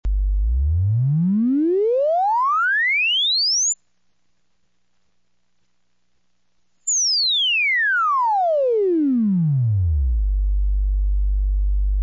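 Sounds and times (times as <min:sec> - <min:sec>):
sine wave sweep: 0:00.1 - 0:03.8, 0:06.9 - 0:12.0.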